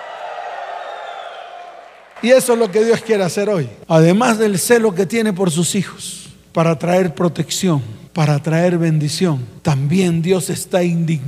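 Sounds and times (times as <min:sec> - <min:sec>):
church audience shouting and cheering: 0:00.0 - 0:03.2
speech: 0:02.2 - 0:11.2.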